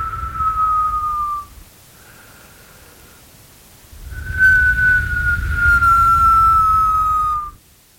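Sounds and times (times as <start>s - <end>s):
Candlemas crack wind whistling: 0.0s - 1.8s, 3.8s - 7.7s.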